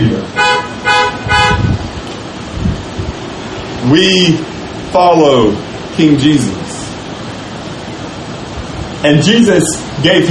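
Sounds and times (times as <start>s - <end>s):
car horns honking during a sermon: 0.3s - 1.9s
speech: 3.9s - 6.7s, 9.0s - 10.2s.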